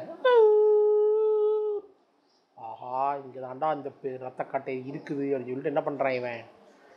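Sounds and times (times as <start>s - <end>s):
person imitating howling of dogs and jackals: 0.0s - 1.9s
speech: 3.5s - 6.6s.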